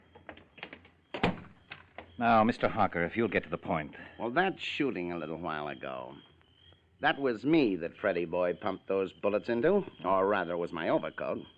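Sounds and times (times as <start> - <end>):
door shut with a solid thump: 0.1 - 2.2
speech: 2.2 - 6.3, 7.0 - 11.5.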